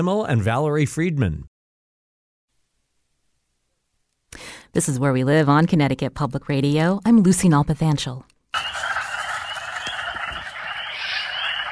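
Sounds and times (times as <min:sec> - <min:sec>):
speech: 0:00.0 - 0:01.5, 0:04.4 - 0:08.3
chorus of male spring peeper frogs calling: 0:08.6 - 0:11.6.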